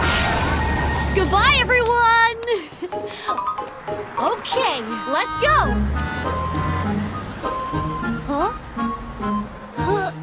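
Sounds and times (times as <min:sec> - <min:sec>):
car engines rumbling low in a traffic jam: 0:00.0 - 0:10.2
speech: 0:01.2 - 0:06.5
car horns honking and blaring in a traffic jam: 0:04.5 - 0:09.6.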